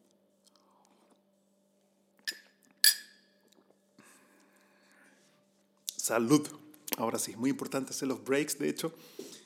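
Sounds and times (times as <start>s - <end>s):
ceramic coffee cup clinking: 2.3s - 3.2s
speech: 6.1s - 9.3s.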